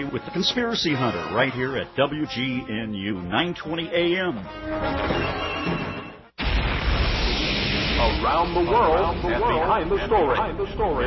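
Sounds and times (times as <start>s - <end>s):
speech: 0.0s - 5.9s, 8.0s - 11.0s
building collapsing with a thunderous rumbling crash: 5.0s - 9.7s.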